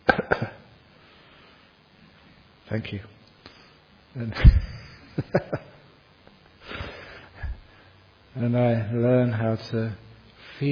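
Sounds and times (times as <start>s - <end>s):
person coughing: 0.0s - 0.7s
speech: 2.7s - 3.2s, 4.2s - 5.7s, 8.4s - 10.0s.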